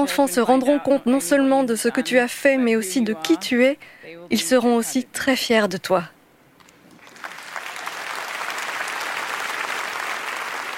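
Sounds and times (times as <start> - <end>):
speech: 0.0 - 6.2
large crowd giving a standing ovation after a speech: 6.9 - 10.7.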